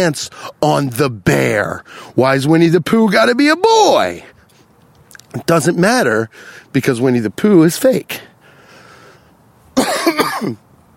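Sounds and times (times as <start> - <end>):
speech: 0.0 - 4.3, 5.3 - 8.3, 9.8 - 10.7
harsh raspy cough: 9.8 - 10.6.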